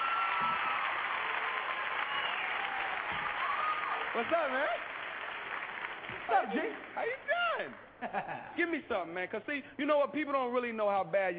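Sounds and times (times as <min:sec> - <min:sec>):
crowd applause: 0:00.0 - 0:07.8
speech: 0:04.2 - 0:04.9, 0:06.3 - 0:11.3.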